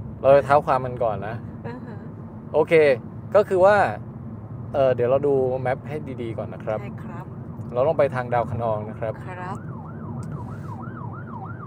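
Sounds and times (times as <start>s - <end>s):
low rumble of road traffic: 0.0s - 11.6s
speech: 0.2s - 1.9s, 2.5s - 4.1s, 4.7s - 9.6s
ambulance siren wailing: 9.2s - 11.6s.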